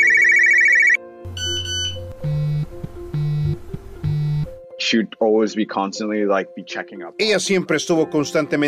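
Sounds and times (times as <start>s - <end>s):
mobile phone ringtone with electronic beeping melody: 0.0s - 4.6s
speech: 4.9s - 8.6s.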